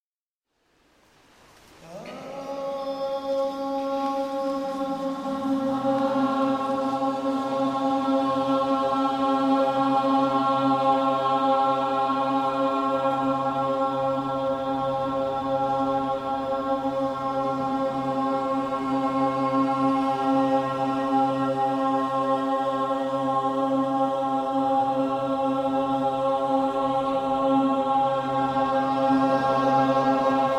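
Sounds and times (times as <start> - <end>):
people singing: 1.8 - 30.5.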